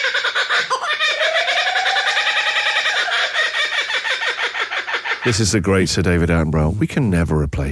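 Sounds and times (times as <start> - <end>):
kookaburra laughing call: 0.0 - 5.4
speech: 5.2 - 7.6.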